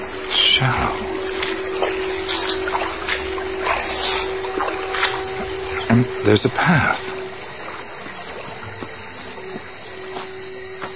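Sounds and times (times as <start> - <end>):
shallow water rippling and trickling: 0.0 - 10.9
speech: 0.6 - 1.0, 6.0 - 7.1.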